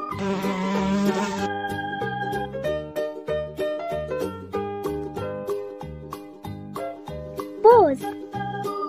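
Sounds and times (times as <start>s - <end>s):
bee buzzing: 0.0s - 1.5s
rising-and-falling squeaky effect: 0.0s - 1.5s
bouncy tuneful music track: 0.0s - 8.8s.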